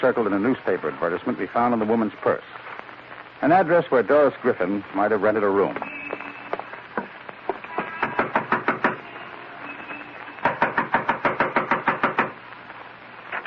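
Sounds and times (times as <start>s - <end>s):
speech: 0.0s - 2.7s, 3.4s - 6.0s
quiet steady hum: 0.0s - 13.4s
rapid sharp knocking on a door: 8.0s - 9.0s, 10.4s - 12.4s.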